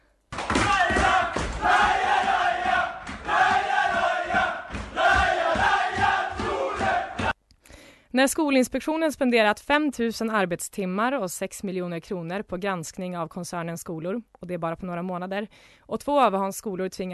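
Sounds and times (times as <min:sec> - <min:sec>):
rhythmic thumps: 0:00.3 - 0:07.4
crowd in Umeå cheering and roaring: 0:00.4 - 0:07.4
people shouting: 0:00.4 - 0:07.4
speech: 0:08.2 - 0:17.1.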